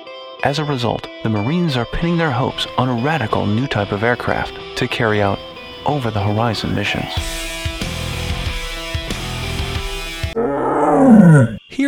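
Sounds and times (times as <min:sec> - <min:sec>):
speech: 0:00.4 - 0:07.5
steady musical drone: 0:02.2 - 0:10.4
Siberian tiger roaring: 0:10.4 - 0:11.6.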